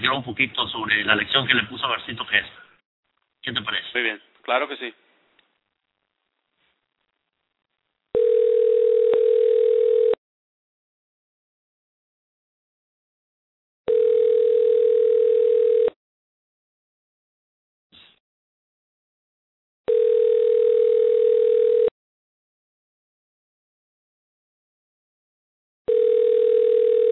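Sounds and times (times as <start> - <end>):
speech: 0.1 - 2.6, 3.4 - 5.0
ringback tone of an unanswered telephone call: 8.2 - 10.2, 13.9 - 16.0, 19.9 - 21.9, 25.9 - 27.1.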